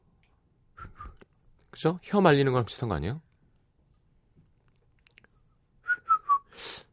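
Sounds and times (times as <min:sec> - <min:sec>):
person whistling short clear notes: 0:00.8 - 0:01.2, 0:05.8 - 0:06.8
speech: 0:01.8 - 0:03.3.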